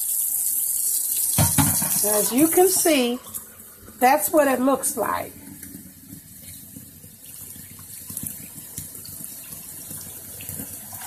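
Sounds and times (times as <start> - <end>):
faucet water running into a clear cup: 0.0 - 11.0
speech: 2.0 - 3.4, 4.0 - 5.4.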